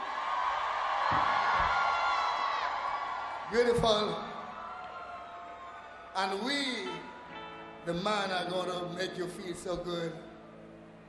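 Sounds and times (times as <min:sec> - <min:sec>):
audience of largely women screaming and cheering: 0:00.0 - 0:07.8
speech: 0:03.5 - 0:04.3, 0:06.2 - 0:07.1, 0:07.8 - 0:10.3.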